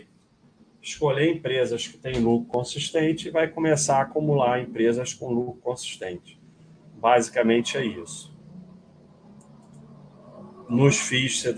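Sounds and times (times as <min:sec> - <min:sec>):
speech: 0:00.8 - 0:06.4, 0:07.0 - 0:08.3, 0:10.7 - 0:11.5
motorcycles passing by outside: 0:06.6 - 0:11.5.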